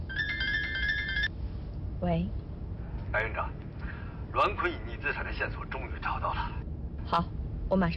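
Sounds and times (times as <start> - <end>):
phone ringtone for an incoming call: 0.1 - 1.3
speech: 2.0 - 2.4, 3.1 - 3.6, 4.3 - 7.9.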